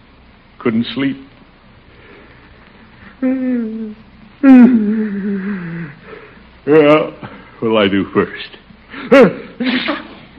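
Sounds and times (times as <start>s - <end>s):
speech: 0.6s - 1.3s, 3.2s - 5.6s, 6.6s - 10.3s
brief softer vocal sound: 2.9s - 7.0s
person with a cold sneezing: 9.0s - 10.3s.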